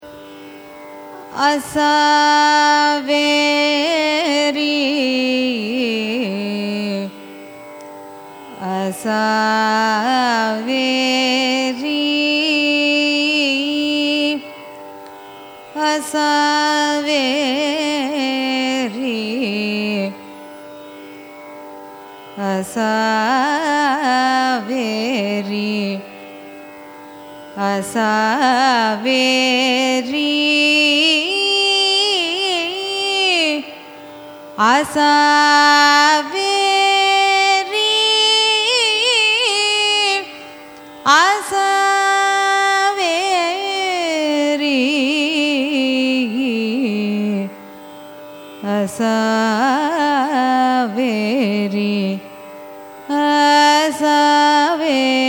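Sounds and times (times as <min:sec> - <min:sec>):
carnatic raga music: 0:00.0 - 0:55.2.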